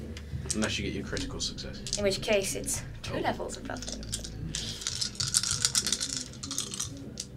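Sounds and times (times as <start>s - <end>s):
speech: 0.6s - 4.2s
dice being shaken and rolled in a tabletop game: 1.8s - 2.1s, 3.5s - 7.3s.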